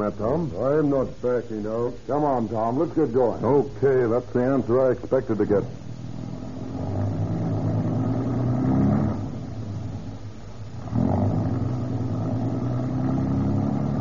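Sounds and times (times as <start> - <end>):
speech: 0.0 - 5.8
car engine revving and pulling away: 6.0 - 13.9.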